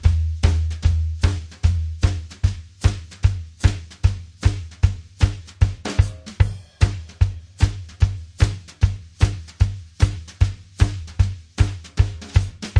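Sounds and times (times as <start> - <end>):
150 shuffle drum loops and breaks: 0.0 - 12.7.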